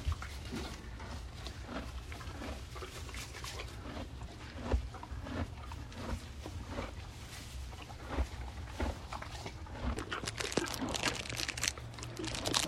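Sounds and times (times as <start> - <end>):
low steady rumble: 0.0 - 12.6
plastic peppermint wrapper crinkling and tearing open in a hand: 10.0 - 12.6.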